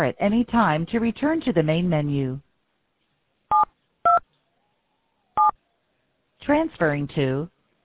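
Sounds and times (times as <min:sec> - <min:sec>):
speech: 0:00.0 - 0:02.4, 0:06.4 - 0:07.5
touch-tone phone keypad DTMF beeps: 0:03.5 - 0:04.2.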